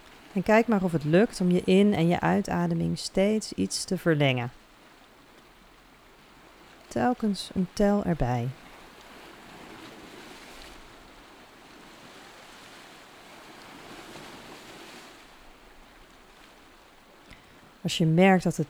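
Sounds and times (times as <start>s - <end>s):
ocean surf washing in: 0.0s - 18.6s
speech: 0.4s - 4.6s, 6.9s - 8.6s, 17.8s - 18.6s.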